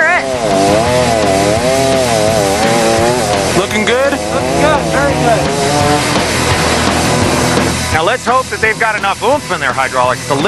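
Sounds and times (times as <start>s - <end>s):
chainsaw cutting through a heavy log: 0.0s - 8.0s
speech: 8.5s - 10.4s.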